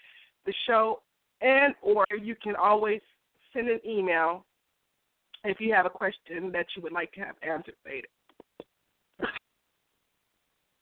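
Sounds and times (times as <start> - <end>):
speech: 0.4 - 4.5, 5.4 - 8.2
person coughing: 9.2 - 9.4.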